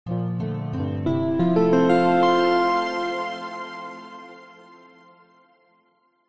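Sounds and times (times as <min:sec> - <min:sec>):
soft calm warm sincere bright musical ident signature: 0:01.0 - 0:05.6.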